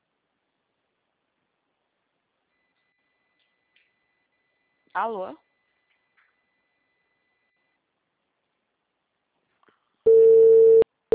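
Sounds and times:
speech: 5.0s - 5.5s
telephone ringing tone while a call is placed: 10.1s - 10.8s.

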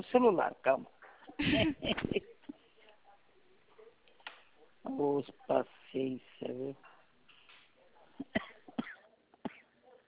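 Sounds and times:
speech: 0.0s - 2.3s, 4.9s - 6.9s
short dry coughs: 8.2s - 9.7s.

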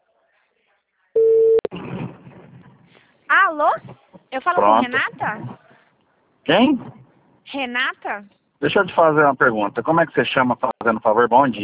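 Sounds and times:
telephone line beep during an outgoing call: 1.2s - 1.7s
speech: 3.4s - 5.6s, 6.5s - 11.6s.

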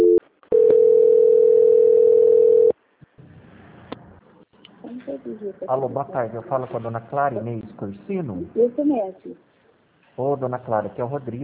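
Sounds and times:
telephone line tone during a call transfer: 0.0s - 2.8s
speech: 5.4s - 9.6s, 10.2s - 11.4s.

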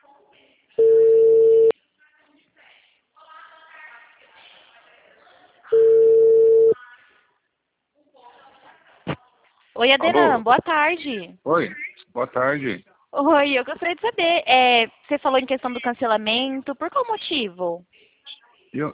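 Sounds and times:
telephone ringback tone beeps: 0.8s - 1.7s, 5.8s - 6.8s
speech: 9.8s - 18.0s, 18.7s - 18.9s.

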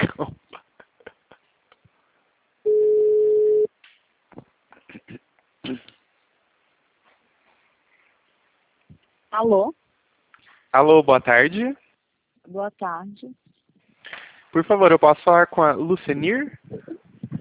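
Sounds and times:
telephone ringing tone on an outgoing call: 2.7s - 3.7s
speech: 9.4s - 9.8s, 10.8s - 11.8s, 12.5s - 13.4s, 14.5s - 16.8s.

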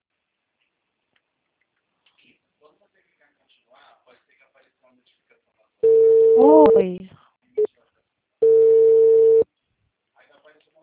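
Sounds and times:
telephone line tone after a dropped call: 5.8s - 6.9s, 8.4s - 9.4s
speech: 6.4s - 7.2s.

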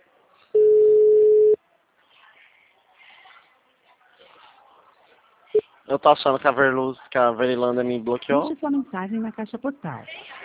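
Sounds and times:
phone busy tone beep after a dropped call: 0.6s - 1.6s
speech: 5.9s - 10.4s.

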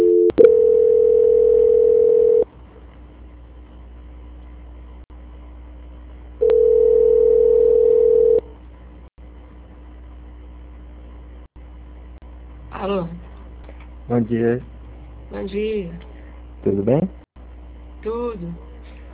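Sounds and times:
telephone call transfer tones on a line during a contract call: 0.0s - 2.4s, 6.4s - 8.4s
speech: 14.2s - 14.8s, 15.4s - 17.2s, 18.0s - 18.7s.

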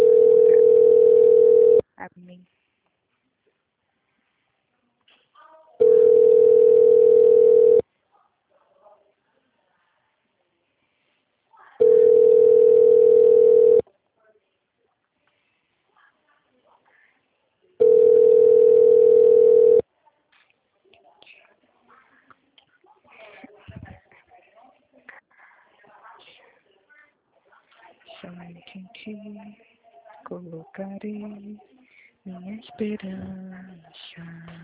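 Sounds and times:
loud steady telephone tone beeps: 0.0s - 1.8s, 5.8s - 7.8s, 11.8s - 13.8s, 17.8s - 19.8s
faint indistinct noise: 0.0s - 34.6s.

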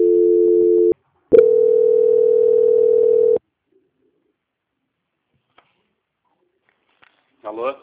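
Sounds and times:
telephone dual tone marking a bank call transfer: 0.0s - 3.4s.

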